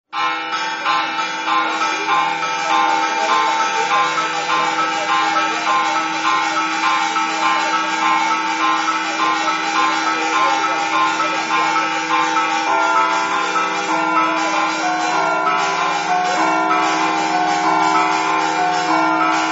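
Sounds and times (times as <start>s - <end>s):
bells: 0.1s - 19.5s.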